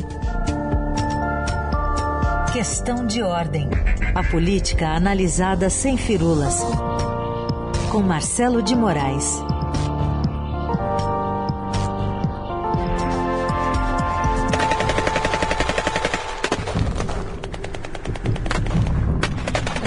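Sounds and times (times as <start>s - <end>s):
steady musical backing: 0.0s - 15.6s
speech: 2.6s - 6.9s, 7.9s - 9.5s
rapid automatic gunfire bursts: 14.5s - 18.8s.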